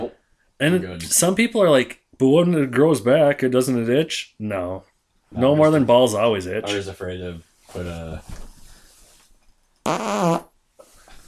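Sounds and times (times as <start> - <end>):
speech: 0.0 - 8.4, 9.8 - 10.5
loud buzzy fart: 9.8 - 10.6.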